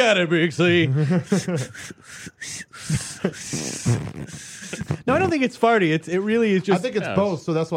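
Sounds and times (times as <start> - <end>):
speech: 0.0 - 7.7
laughter: 0.6 - 2.0
voice imitating a whistle like air escaping: 1.4 - 5.4
short voiced vocal noises: 1.6 - 5.4.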